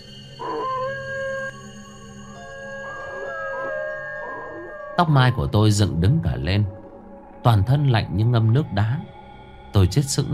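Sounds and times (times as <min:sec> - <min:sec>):
dog howling long and mournfully outside in the lane: 0:00.0 - 0:05.6
speech: 0:05.0 - 0:06.8, 0:07.4 - 0:10.3.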